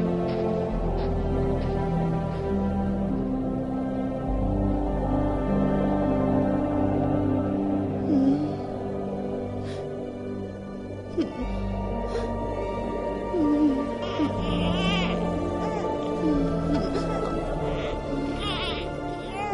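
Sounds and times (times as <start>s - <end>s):
droning tonal background: 0.0s - 19.5s
infant crying in wavering wails: 13.3s - 19.5s.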